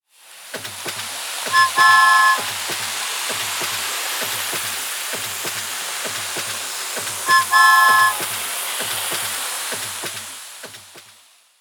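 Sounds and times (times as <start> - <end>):
RC toy train movement: 0.6 - 10.8
RC toy train whistle blowing: 1.5 - 2.8, 7.2 - 8.4.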